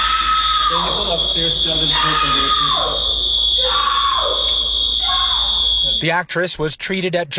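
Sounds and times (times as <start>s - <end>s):
woman screaming and yelling while removed from a plane: 0.0s - 1.0s, 2.0s - 3.0s, 3.6s - 5.5s
loud steady high-pitched alarm tone: 0.0s - 6.3s
speech: 0.7s - 3.9s, 6.0s - 7.3s.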